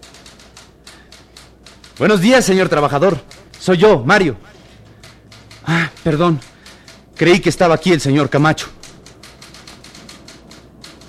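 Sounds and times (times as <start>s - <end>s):
low hum: 0.0s - 11.0s
typewriter keystrokes: 0.0s - 11.0s
speech: 2.0s - 4.5s, 5.6s - 6.5s, 7.2s - 8.8s.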